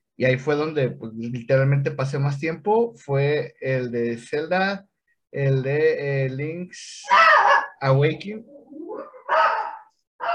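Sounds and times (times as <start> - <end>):
speech: 0.2 - 8.6
small female dog barking: 7.1 - 7.8, 9.0 - 10.3
small female dog whining: 8.5 - 10.3.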